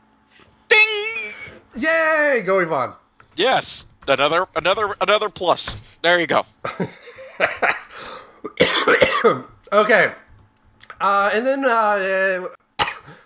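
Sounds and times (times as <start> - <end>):
speech: 1.8 - 7.8, 8.4 - 10.2, 11.0 - 13.2
laughter: 6.6 - 8.0
person coughing: 7.4 - 9.5, 12.8 - 13.2.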